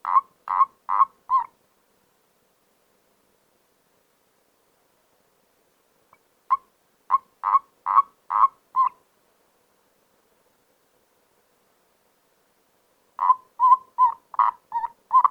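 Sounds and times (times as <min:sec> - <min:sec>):
common toad giving quick pulsed croaks: 0:00.0 - 0:01.5, 0:06.5 - 0:09.0, 0:13.2 - 0:15.2.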